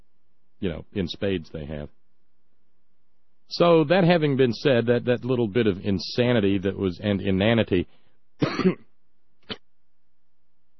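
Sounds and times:
speech: 0.6s - 2.0s, 3.5s - 8.8s
person coughing raspily: 8.4s - 9.6s.

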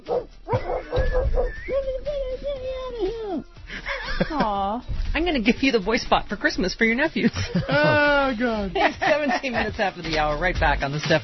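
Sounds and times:
dog yipping: 0.0s - 3.4s
laughter: 3.7s - 4.8s, 7.2s - 9.9s
speech: 4.5s - 11.2s.

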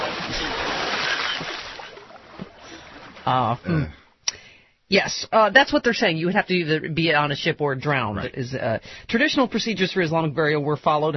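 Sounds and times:
body splashing into the Arabian Sea: 0.0s - 3.3s
speech: 3.2s - 4.0s, 4.9s - 11.1s.

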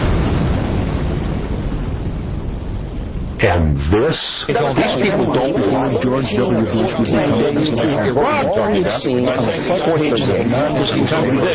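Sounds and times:
car bomb exploding less than a block away: 0.0s - 6.6s
speech: 3.4s - 11.5s.

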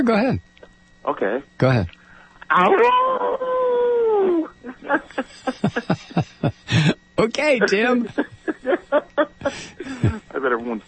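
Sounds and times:
speech: 0.0s - 10.8s
person voicing a wavering howl: 2.5s - 4.6s
laughter: 3.2s - 7.0s, 7.6s - 10.4s.

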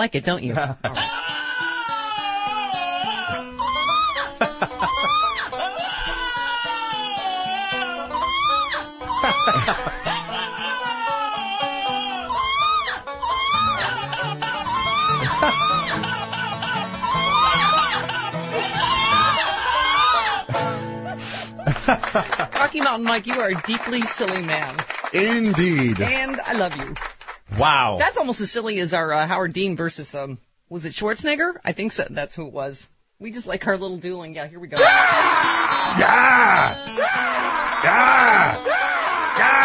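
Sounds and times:
speech: 0.0s - 1.2s, 22.1s - 39.6s
laughter: 0.6s - 26.8s, 34.8s - 39.6s
dog's shrill wavering screams chopped and looped into a remix: 1.0s - 20.5s, 34.8s - 39.6s.

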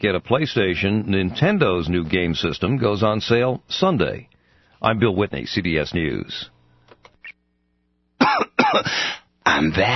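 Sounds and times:
speech: 0.0s - 6.5s, 8.2s - 9.9s
short soft throat-clearing: 8.2s - 9.0s
man giving a loud rasping cough: 8.2s - 9.7s.

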